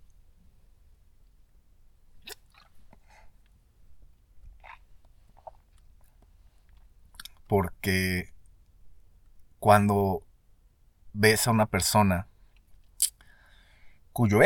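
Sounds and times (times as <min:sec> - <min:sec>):
person swallowing coffee: 0:02.2 - 0:03.0
person sipping coffee: 0:02.2 - 0:03.3, 0:04.4 - 0:07.4
speech: 0:07.5 - 0:08.4, 0:09.6 - 0:10.3, 0:11.2 - 0:12.3, 0:14.2 - 0:14.4.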